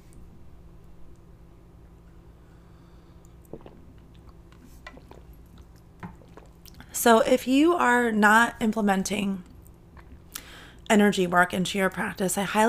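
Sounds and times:
steady low hum: 0.0 - 12.6
person sipping water: 3.1 - 6.9, 9.9 - 10.5
speech: 7.0 - 9.5, 10.9 - 12.6.

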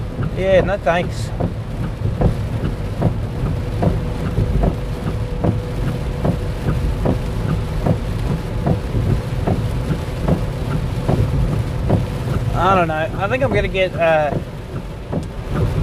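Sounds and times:
heavy rain pouring down: 0.0 - 15.8
low rumble: 0.0 - 15.8
speech: 0.4 - 1.6, 12.6 - 14.5.

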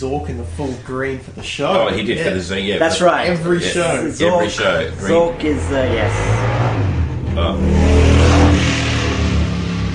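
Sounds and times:
speech: 0.0 - 8.3
motorbike engine revving: 4.8 - 9.9.

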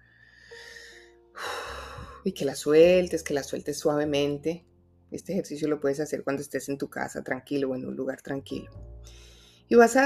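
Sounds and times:
deep inhale as part of a breathing exercise: 0.0 - 2.2, 9.0 - 9.7
speech: 2.2 - 10.0.

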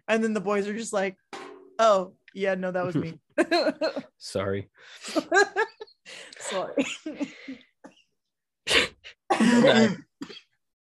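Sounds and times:
speech: 0.1 - 7.7, 9.3 - 10.4
person coughing from laughing hard: 8.7 - 10.5.

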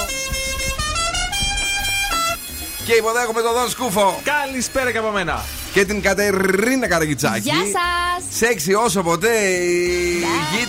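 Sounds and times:
car horns honking: 0.0 - 6.1, 9.7 - 10.6
speech: 2.9 - 10.6.

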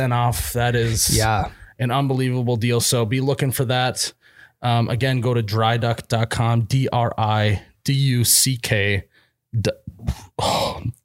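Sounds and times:
speech: 0.0 - 11.0
person imitating a belch with their voice: 9.8 - 11.0.

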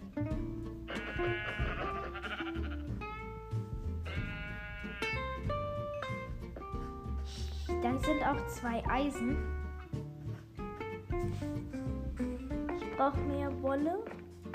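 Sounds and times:
video game music: 0.1 - 14.5
video game sheep bleating: 0.9 - 3.0, 4.0 - 5.4
speech: 7.9 - 9.6, 13.0 - 14.2.

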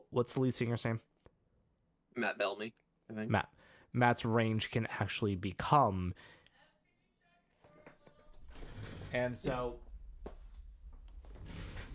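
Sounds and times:
speech: 0.1 - 1.1, 2.2 - 6.4, 9.1 - 9.8
door scraping as it drifts: 8.4 - 9.6, 11.3 - 11.9.

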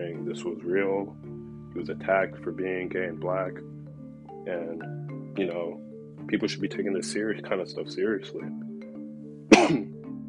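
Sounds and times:
speech: 0.0 - 3.8, 4.4 - 8.6
person coughing: 9.5 - 10.0.

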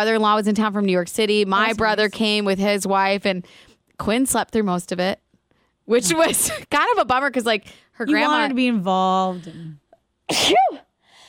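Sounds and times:
speech: 0.0 - 5.2, 5.9 - 10.8
human sneeze: 10.3 - 10.9.

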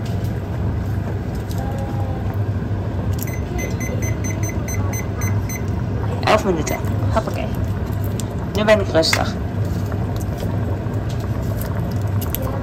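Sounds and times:
steady low rumbling noise: 0.0 - 12.6
kitchen timer beeping while being set: 3.2 - 5.8, 6.6 - 7.0
speech: 6.4 - 7.6, 8.6 - 9.4.

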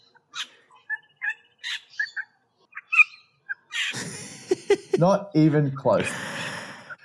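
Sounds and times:
bird mimicking a small water bird's calls: 0.0 - 4.0
laughter: 3.9 - 6.8
speech: 4.7 - 6.3.

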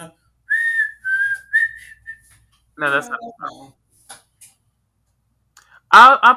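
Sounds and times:
person whistling a movie theme melody: 0.5 - 2.3
person speaking: 2.8 - 3.8.

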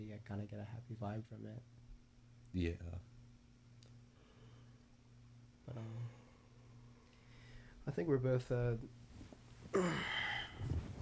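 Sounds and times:
speech: 0.0 - 1.8, 2.5 - 3.1, 5.7 - 6.2, 7.9 - 9.0, 9.7 - 10.2
person yawning: 9.7 - 11.0.

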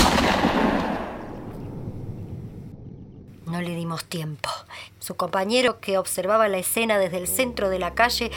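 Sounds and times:
single loud gunshot with long decay: 0.0 - 2.2
speech: 3.6 - 8.3.

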